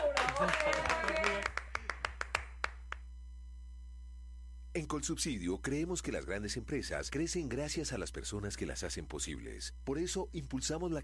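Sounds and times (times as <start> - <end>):
voices cheering: 0.0 - 1.6
small group applauding: 0.0 - 3.0
speech: 0.4 - 1.2, 4.8 - 11.0.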